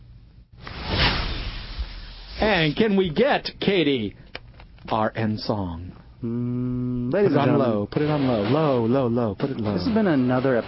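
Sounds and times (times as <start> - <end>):
breathy broadband swoosh sound effect: 0.6 - 2.6
steady airy hiss: 0.6 - 3.0
speech: 2.4 - 4.2, 4.8 - 10.6.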